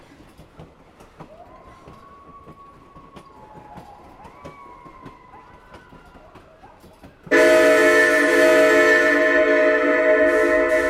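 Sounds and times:
passenger train whistle blast: 7.3s - 10.8s.

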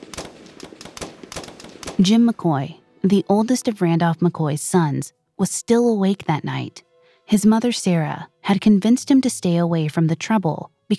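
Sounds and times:
volley of gunshots echoing: 0.0s - 2.3s
speech: 2.0s - 10.9s.

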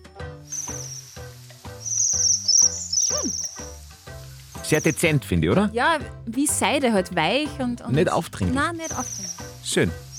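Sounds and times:
Bohemian waxwings giving soft high buzzy trills: 0.5s - 3.8s, 4.6s - 5.2s, 8.8s - 10.1s
speech: 4.7s - 10.1s.

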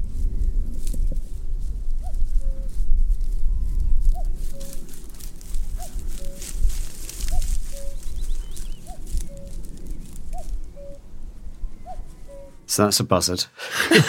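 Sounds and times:
constant rumbling breezy outdoor background: 0.0s - 14.0s
cuckoo calling its two-note song: 4.1s - 4.9s, 7.2s - 12.6s
speech: 12.8s - 14.0s
laughter: 13.6s - 14.0s.

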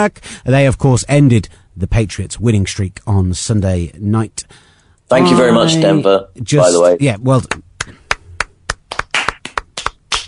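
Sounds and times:
speech: 0.0s - 7.7s
hands clapping over an internet video call: 7.4s - 10.2s.

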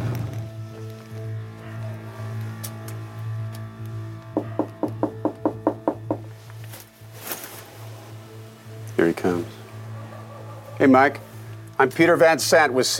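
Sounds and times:
knocking on a front door: 4.4s - 6.3s
speech: 9.0s - 9.6s, 10.8s - 12.9s
laughter: 9.6s - 11.5s.

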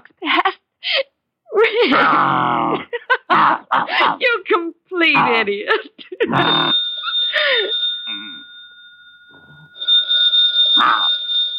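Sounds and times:
speech: 1.8s - 6.8s
telephone ringing with trilling bells: 6.4s - 11.5s.

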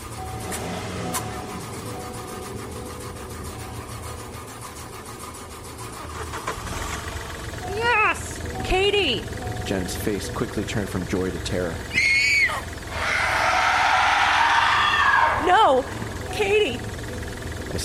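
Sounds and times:
brief rising whine: 0.0s - 7.6s, 11.8s - 17.8s
car engine cranking, straining to start without catching: 0.0s - 17.8s
speech: 9.1s - 12.0s, 15.7s - 16.9s.

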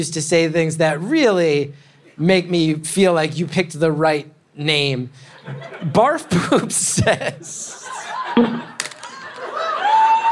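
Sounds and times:
speech: 0.0s - 8.7s
laughter: 5.3s - 10.2s
crowd cheering with shouts and whoops: 7.8s - 10.2s.

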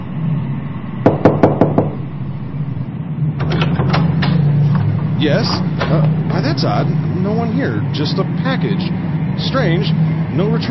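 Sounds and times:
steady low hum: 0.0s - 10.6s
knocking on an apartment door: 1.1s - 2.0s
speech: 5.2s - 10.6s.

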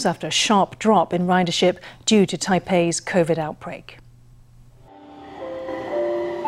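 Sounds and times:
speech: 0.0s - 4.0s
metro train humming and whining through Taipei Main Station at rush hour: 4.9s - 6.4s.

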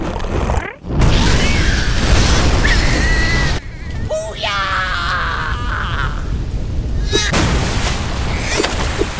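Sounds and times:
roaring crackling rumble of burning methane: 0.0s - 9.1s
methane explosion set off behind barricades at a waste field: 0.9s - 3.6s, 7.3s - 8.5s.

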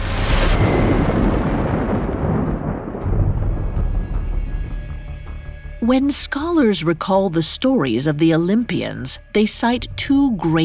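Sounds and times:
thunderclap with deep rolling rumble in thunderstorm: 0.0s - 6.2s
speech: 5.8s - 10.6s.

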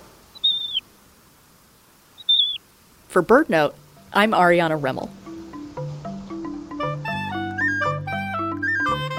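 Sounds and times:
Magellanic plover whistled calls: 0.3s - 0.9s, 2.2s - 2.6s, 7.3s - 9.0s
speech: 3.1s - 5.2s.

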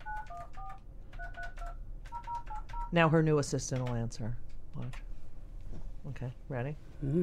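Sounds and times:
phone keypad dialing tones: 0.0s - 2.9s
low hum: 0.0s - 7.2s
speech: 2.9s - 5.1s, 6.0s - 7.2s.

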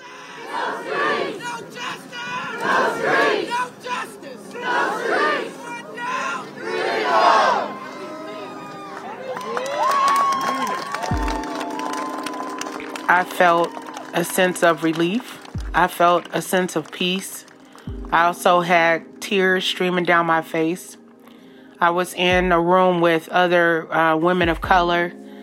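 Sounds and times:
protesters shouting: 0.0s - 12.3s
large crowd of protesters screaming and cheering after a guilty verdict: 0.0s - 15.8s
speech: 13.1s - 17.4s, 18.1s - 21.0s, 21.8s - 25.2s.

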